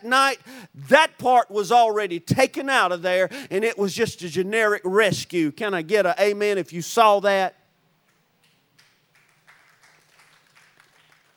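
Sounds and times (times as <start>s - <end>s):
speech: 0.0s - 7.6s
soft scattered applause from a crowd: 8.1s - 11.3s.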